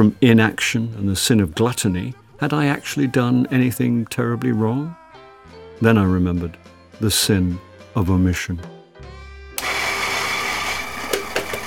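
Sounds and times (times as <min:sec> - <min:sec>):
speech: 0:00.0 - 0:05.0, 0:05.8 - 0:08.8
coffee grinder motor whirring: 0:09.6 - 0:11.6.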